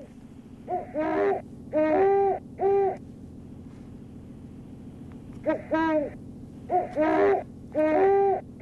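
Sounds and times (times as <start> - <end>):
owl hooting: 0.0 - 3.1, 5.4 - 8.6
low steady background: 0.0 - 8.6.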